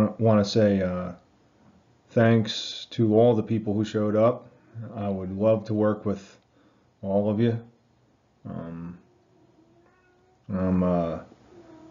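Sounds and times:
speech: 0:00.1 - 0:01.2, 0:02.1 - 0:06.4, 0:07.0 - 0:07.7, 0:08.4 - 0:09.0, 0:10.5 - 0:11.3
male pet cat meowing: 0:09.1 - 0:10.5, 0:11.5 - 0:11.8.

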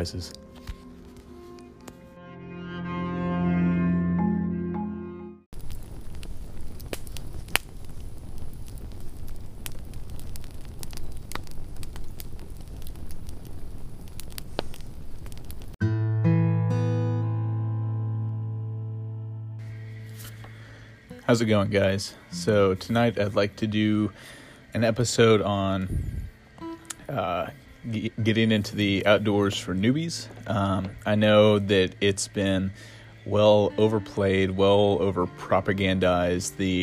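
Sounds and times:
speech: 0:00.0 - 0:00.5, 0:21.3 - 0:26.1, 0:27.2 - 0:36.8
campfire crackling: 0:00.0 - 0:02.0, 0:05.5 - 0:15.8, 0:19.6 - 0:36.8
music: 0:00.0 - 0:05.5, 0:15.8 - 0:36.8.

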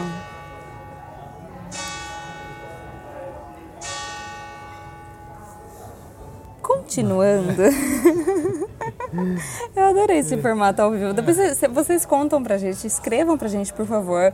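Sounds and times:
church bell tolling the hour: 0:00.0 - 0:07.6
low murmur: 0:00.0 - 0:14.3
laughter: 0:06.9 - 0:10.6
speech: 0:06.9 - 0:14.3.

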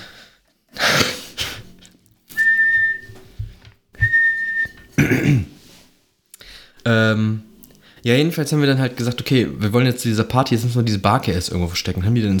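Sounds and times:
short thin safety whistle tones: 0:02.3 - 0:03.3, 0:04.0 - 0:04.9
speech: 0:06.9 - 0:07.4, 0:08.0 - 0:12.3.

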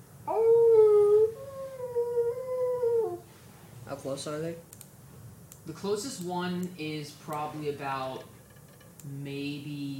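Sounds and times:
wolf howling while hunting: 0:00.3 - 0:03.2
speech: 0:04.0 - 0:04.8, 0:05.6 - 0:08.3, 0:09.0 - 0:09.9.

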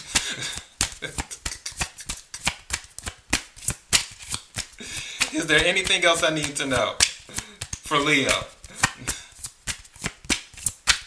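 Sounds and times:
tarot cards shuffled by hand: 0:00.0 - 0:11.0
speech: 0:05.3 - 0:07.1, 0:07.9 - 0:08.6.

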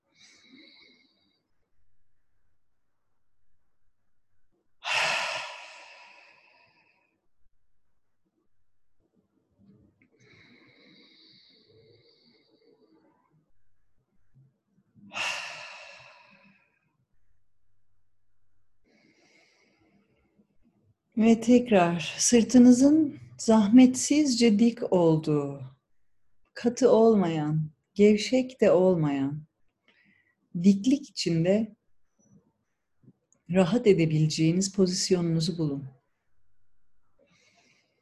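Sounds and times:
slow deep breathing in through the nose and out through the mouth: 0:04.8 - 0:07.2, 0:10.2 - 0:13.8, 0:15.1 - 0:16.7, 0:18.8 - 0:20.0
speech: 0:21.2 - 0:25.7, 0:26.6 - 0:29.5, 0:30.6 - 0:31.8, 0:33.5 - 0:36.0.

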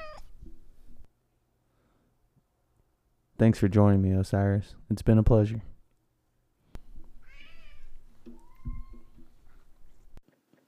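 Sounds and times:
cat meowing: 0:00.0 - 0:00.3, 0:07.2 - 0:09.2
speech: 0:03.4 - 0:05.7
faint rustling: 0:06.6 - 0:10.6.

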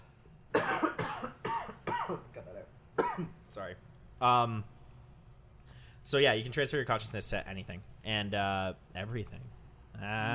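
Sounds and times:
harsh loud coughs: 0:00.5 - 0:03.4
speech: 0:02.1 - 0:02.3, 0:03.2 - 0:04.8, 0:06.0 - 0:10.3.

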